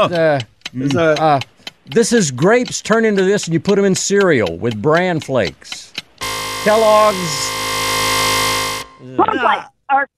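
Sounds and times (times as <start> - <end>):
speech: 0.0 - 5.9, 6.6 - 7.6, 9.2 - 10.1
game show buzzer: 6.2 - 9.1.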